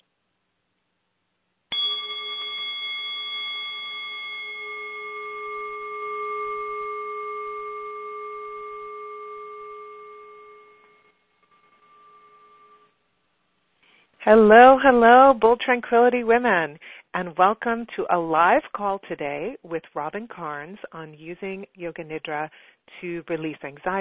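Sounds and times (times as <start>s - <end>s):
single bell struck and ringing: 1.7s - 12.9s
speech: 14.3s - 23.9s.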